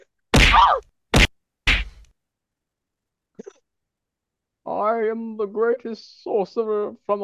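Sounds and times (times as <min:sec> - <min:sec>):
punchy thwacks of someone struck in a comic fight: 0:00.3 - 0:02.1
speech: 0:04.8 - 0:07.2.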